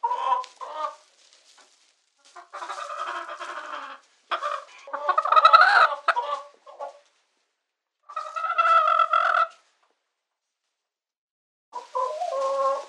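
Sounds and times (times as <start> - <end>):
chicken squawking and cackling in distress: 2.4 - 7.0, 8.1 - 9.6, 11.8 - 12.8.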